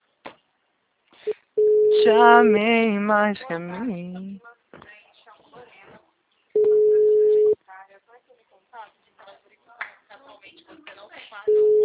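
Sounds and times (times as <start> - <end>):
speech: 2.0 - 4.9
telephone ringing tone while calling someone: 6.6 - 7.6, 11.5 - 11.8.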